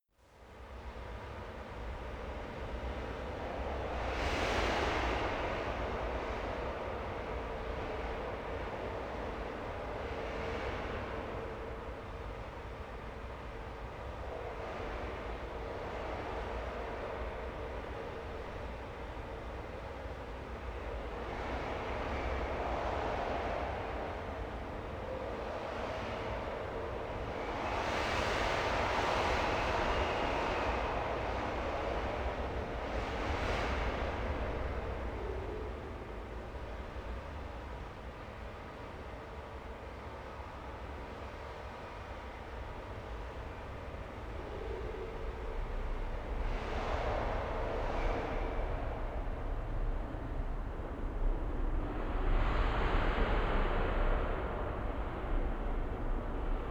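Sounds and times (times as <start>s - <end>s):
wind: 0.0s - 56.7s.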